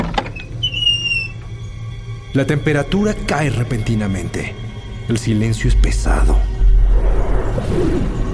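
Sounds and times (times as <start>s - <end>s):
old worm-eaten wooden door of a stone-walled house creaking open: 0.0s - 1.6s
speech: 2.3s - 6.5s, 7.6s - 8.2s.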